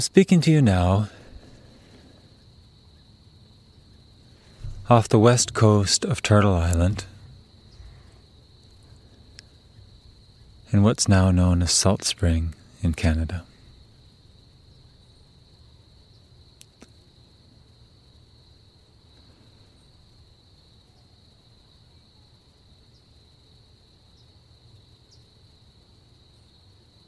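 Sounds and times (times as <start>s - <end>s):
speech: 0.0s - 1.2s, 4.9s - 7.1s, 10.7s - 13.5s
chorus of crickets chirping in the evening: 0.0s - 27.0s
faint low rumble: 0.5s - 15.2s.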